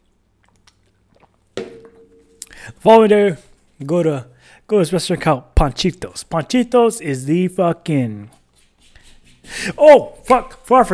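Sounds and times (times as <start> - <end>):
faint wet mouth clicks: 0.4 - 1.4
speech: 2.7 - 8.4, 9.5 - 10.9.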